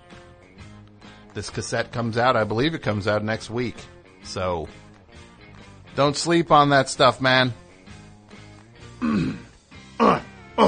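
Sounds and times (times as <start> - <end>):
speech: 1.4 - 4.8, 6.0 - 7.6
coughing: 8.9 - 10.6
throat clearing: 9.0 - 10.6.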